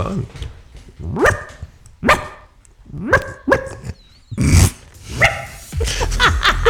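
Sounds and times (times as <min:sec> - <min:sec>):
person on the radio imitating a small yapping dog barking: 0:02.9 - 0:05.5
laughter: 0:05.7 - 0:06.6.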